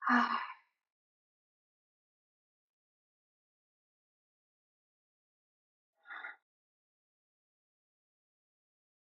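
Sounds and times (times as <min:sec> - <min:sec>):
breathy sigh-like breath: 0:00.0 - 0:00.6.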